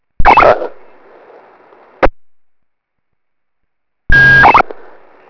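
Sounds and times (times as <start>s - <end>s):
start beep: 0.2s - 0.5s, 4.1s - 4.7s.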